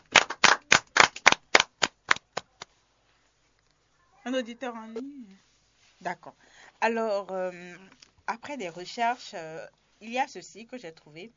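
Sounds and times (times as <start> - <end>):
small group clapping: 0.0 - 2.8
speech: 4.2 - 11.3.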